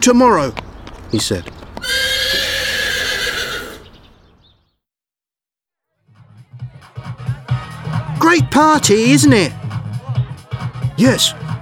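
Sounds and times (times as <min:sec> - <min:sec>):
speech: 0:00.0 - 0:02.4, 0:08.3 - 0:09.6, 0:11.0 - 0:11.4
horse whinnying: 0:01.8 - 0:04.0.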